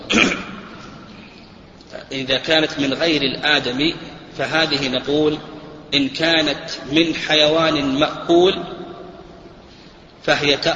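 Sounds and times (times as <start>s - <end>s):
loud sharp sneeze: 0.0s - 0.8s
speech: 2.1s - 8.8s, 10.3s - 10.7s.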